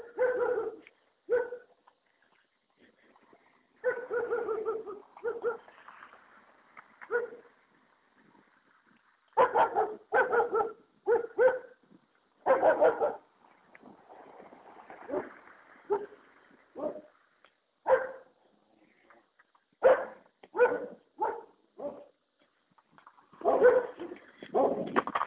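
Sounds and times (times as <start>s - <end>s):
dog barking: 0.0s - 1.7s, 3.8s - 5.7s, 7.1s - 7.5s, 9.4s - 11.8s, 12.4s - 13.2s, 15.9s - 16.2s, 16.8s - 17.1s, 17.8s - 18.3s, 19.8s - 22.1s, 23.4s - 24.8s.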